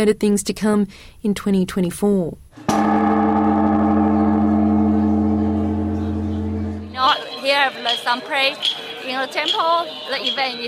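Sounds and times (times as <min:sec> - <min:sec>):
speech: 0:00.0 - 0:03.2, 0:07.0 - 0:10.6
huge temple bell struck with wooden pole: 0:02.7 - 0:07.2.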